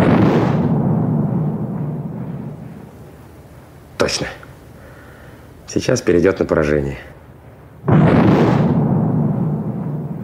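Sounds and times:
naval artillery salvo boom and rumble: 0:00.0 - 0:03.9, 0:07.8 - 0:10.2
speech: 0:04.1 - 0:04.4, 0:05.7 - 0:07.1.

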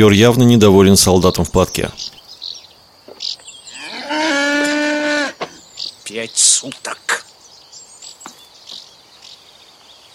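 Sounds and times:
speech: 0:00.0 - 0:02.2, 0:06.1 - 0:07.2
cow mooing while being milked by a soldier: 0:03.7 - 0:05.5.

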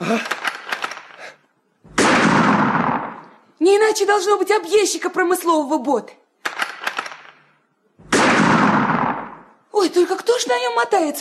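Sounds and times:
speech: 0:00.1 - 0:00.4, 0:03.6 - 0:06.2, 0:09.8 - 0:11.2
gunshots: 0:01.9 - 0:03.4, 0:06.4 - 0:09.6.

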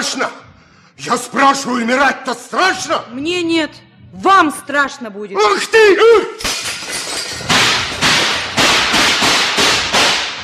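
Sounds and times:
speech: 0:00.1 - 0:06.5
clattering crash of a lantern being smashed: 0:06.4 - 0:10.4
sharp loud gunshots: 0:07.5 - 0:10.4.

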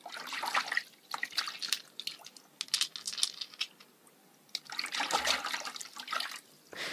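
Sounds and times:
shallow river water splashing at a riverbank: 0:00.0 - 0:02.3, 0:04.6 - 0:06.4
clean clear pebbles clicking as a hand scoops them from river water: 0:01.5 - 0:03.9.

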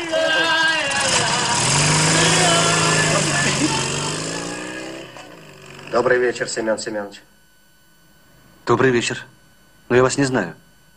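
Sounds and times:
motorcycle with sidecar engine driving off: 0:00.0 - 0:06.5
speech: 0:06.0 - 0:07.4, 0:08.7 - 0:10.9.

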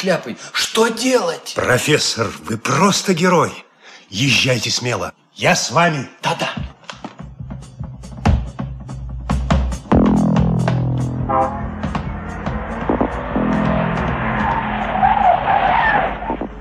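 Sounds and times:
speech: 0:00.0 - 0:06.7
car engine roaring and revving hard: 0:09.9 - 0:16.5
car tires squealing in a skid around a turn: 0:11.3 - 0:16.5.

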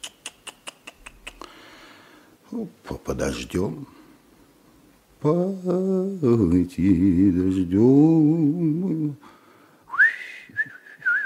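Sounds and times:
speech: 0:02.5 - 0:04.0, 0:05.2 - 0:09.3
man softly whistling a short melodic phrase: 0:09.9 - 0:11.2.

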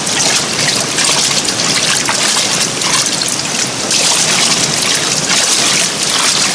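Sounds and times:
water splashing and sloshing: 0:00.0 - 0:06.5.

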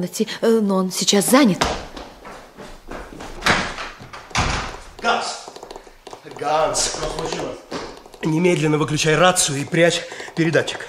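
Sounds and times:
speech: 0:00.0 - 0:01.9, 0:06.4 - 0:10.8
thumps: 0:01.6 - 0:10.8
door being opened: 0:03.0 - 0:09.2.

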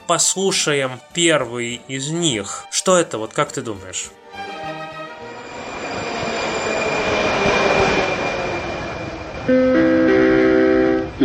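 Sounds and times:
speech: 0:00.1 - 0:04.8, 0:09.5 - 0:09.8
Prague metro train rumbling: 0:04.2 - 0:11.2
multi-pitch metro door-closing tone: 0:04.4 - 0:11.2.

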